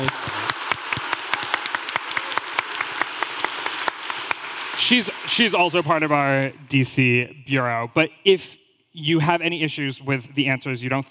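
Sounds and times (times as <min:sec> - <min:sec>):
speech: 0:00.0 - 0:00.4, 0:04.8 - 0:11.0
room full of people applauding: 0:00.0 - 0:06.7.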